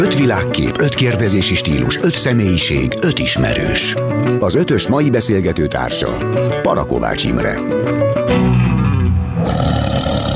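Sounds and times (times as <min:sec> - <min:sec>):
speech: 0:00.0 - 0:08.7
tiger roar sound effect: 0:08.4 - 0:10.3.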